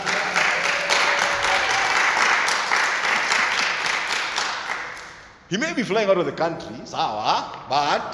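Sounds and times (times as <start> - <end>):
audience applause for a teacher: 0.0 - 5.2
speech: 5.5 - 8.1.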